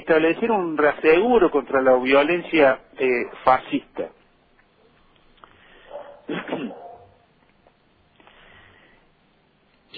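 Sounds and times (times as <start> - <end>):
faint noise: 0.0 - 9.9
speech: 0.1 - 4.2
dog barking: 5.8 - 7.3.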